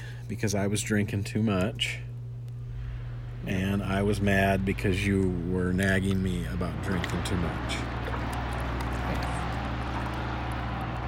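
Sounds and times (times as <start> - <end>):
speech: 0.3 - 2.1, 3.4 - 7.9
snow plow truck engine droning: 2.7 - 11.0.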